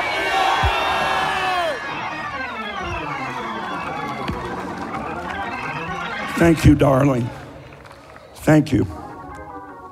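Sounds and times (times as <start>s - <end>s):
large crowd shouting and screaming a prayer together: 0.0s - 7.7s
speech: 6.4s - 7.4s, 8.5s - 9.0s.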